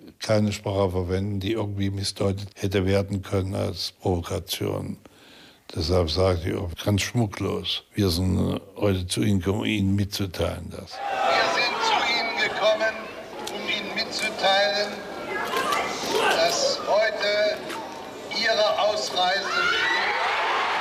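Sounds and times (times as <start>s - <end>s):
speech: 0.3s - 5.1s, 5.7s - 11.4s
large crowd in Prague cheering in jubilation: 11.0s - 20.7s.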